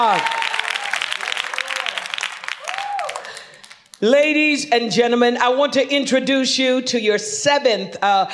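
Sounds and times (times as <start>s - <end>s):
speech: 0.0s - 0.4s, 4.0s - 8.3s
scattered voices shouting and cheering: 0.0s - 2.0s
crowd clapping steadily and densely: 0.0s - 4.0s.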